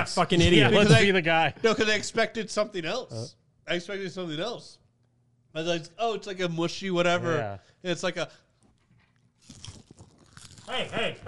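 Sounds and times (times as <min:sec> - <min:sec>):
speech: 0:00.0 - 0:04.8, 0:05.5 - 0:08.4, 0:10.7 - 0:11.2
crunching on crisp chocolate domes: 0:09.3 - 0:11.1.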